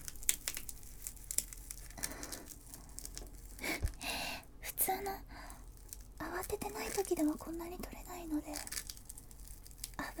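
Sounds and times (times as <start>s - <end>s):
velcro strap of a wrist cuff ripping open: 0.0s - 3.8s, 5.6s - 7.4s, 8.5s - 10.1s
soft rustling and handling noises: 0.0s - 4.3s, 4.9s - 10.1s
speech: 6.9s - 8.8s.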